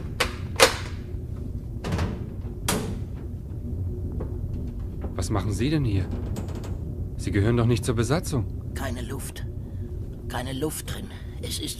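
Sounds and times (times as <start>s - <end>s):
door opening aboard a ship: 0.0s - 7.0s
speech: 5.2s - 6.4s, 7.2s - 9.5s, 10.3s - 11.7s.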